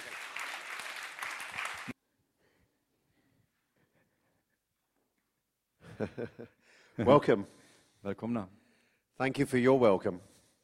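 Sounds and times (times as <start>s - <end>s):
audience applause welcoming a guest speaker: 0.0s - 2.0s
speech: 6.0s - 8.6s, 9.2s - 10.3s.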